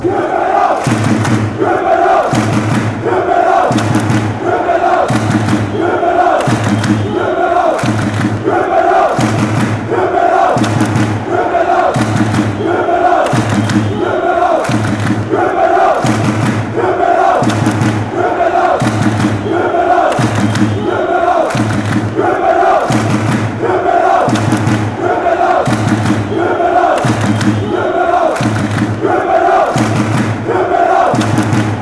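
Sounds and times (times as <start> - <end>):
fans chanting: 0.0 - 31.8
drums: 0.8 - 31.8.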